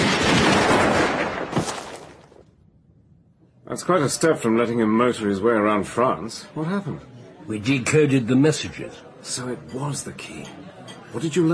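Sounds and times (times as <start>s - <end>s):
sharp gunshot crack: 0.0s - 2.4s
speech: 3.7s - 11.5s.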